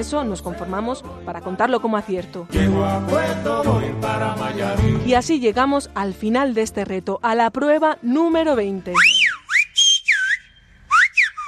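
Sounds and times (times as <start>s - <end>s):
speech: 0.0s - 9.2s
whistled Silbo Gomero language of the Canary Islands: 8.9s - 11.4s.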